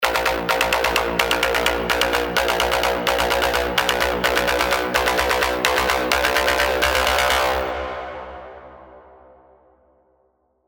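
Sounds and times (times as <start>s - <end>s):
tonal risers at 128 BPM in A sharp: 0.0s - 8.0s.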